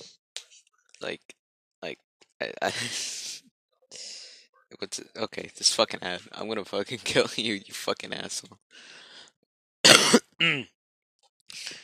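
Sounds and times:
speech: 1.0 - 3.2, 4.8 - 9.1, 10.4 - 10.8
throat-clearing cough: 9.9 - 10.7.

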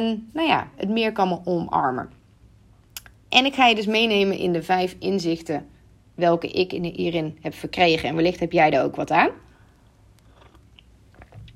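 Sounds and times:
speech: 0.0 - 2.2, 3.3 - 9.4
quiet room hum: 0.0 - 11.5
person sipping tea: 9.5 - 11.5
slurp of tea: 10.2 - 11.5.

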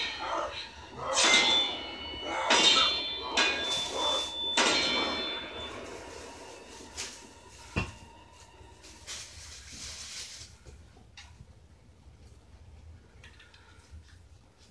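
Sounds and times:
steel door clanging: 0.0 - 8.4.

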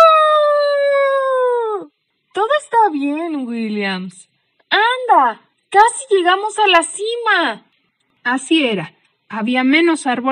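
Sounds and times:
man howling in fright: 0.0 - 1.9
speech: 3.0 - 10.3.

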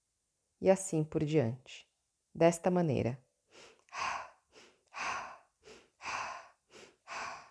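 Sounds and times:
speech: 0.6 - 4.1
circular breathing, inhaling through the nose and exhaling through the mouth: 3.5 - 7.4.

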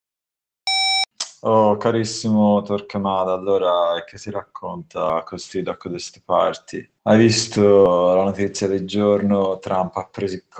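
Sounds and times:
telephone answering machine electronic beep: 0.7 - 1.1
speech: 1.4 - 10.5.

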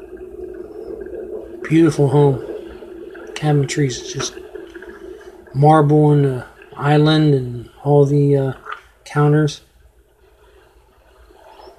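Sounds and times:
tea being poured into a cup: 1.2 - 6.9
speech: 1.7 - 2.5, 3.4 - 4.4, 5.5 - 9.7.

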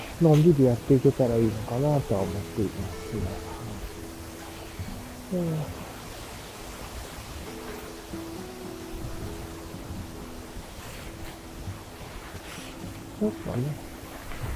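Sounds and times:
strong wind blowing outdoors: 0.0 - 14.5
speech: 0.2 - 3.6, 5.3 - 5.8, 13.2 - 13.9.

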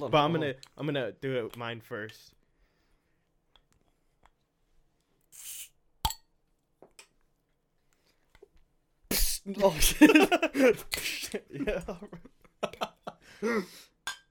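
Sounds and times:
speech: 0.0 - 2.4, 9.5 - 12.8, 13.4 - 13.9
people laughing: 9.6 - 13.7
drinking glasses clinking in a toast: 14.1 - 14.2.

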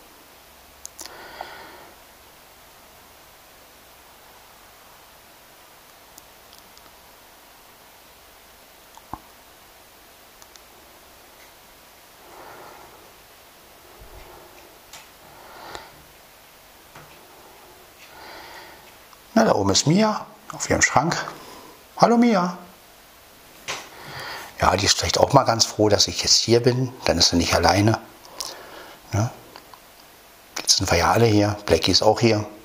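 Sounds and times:
steady soft hiss in a living room: 0.0 - 32.6
small clicks: 10.4 - 10.7
faint rustles: 10.4 - 19.2
speech: 19.4 - 21.4, 22.0 - 22.6, 24.7 - 28.0, 29.1 - 29.4, 30.8 - 32.6.

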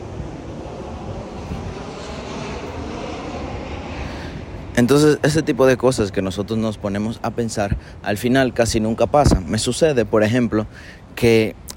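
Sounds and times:
airplane engine roar as aircraft passes overhead: 0.0 - 11.7
speech: 4.8 - 11.7.

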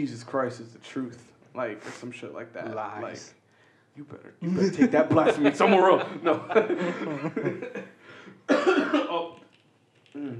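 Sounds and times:
speech: 0.0 - 3.4, 4.0 - 9.4, 10.1 - 10.3
laughter: 4.5 - 8.0
wet cough with mucus: 8.5 - 9.3.

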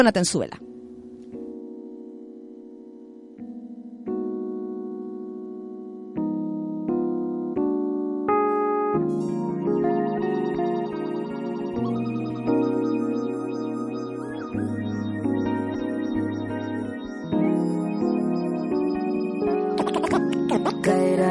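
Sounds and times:
speech: 0.0 - 0.7
instrumental song with bass and layered instruments: 0.6 - 21.2
sustained synth chords: 6.4 - 21.2.

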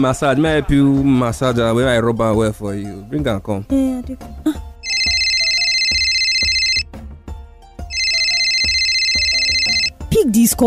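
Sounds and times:
speech: 0.0 - 4.6, 10.3 - 10.6
mobile phone ringtone with electronic tone over thumping beat: 4.8 - 6.9, 7.9 - 10.0.

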